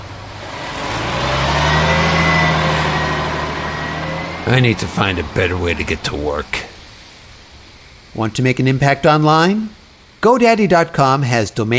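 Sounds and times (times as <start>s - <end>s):
large bus engine rumbling and revving: 0.0s - 7.5s
speech: 4.5s - 6.7s, 8.2s - 11.7s.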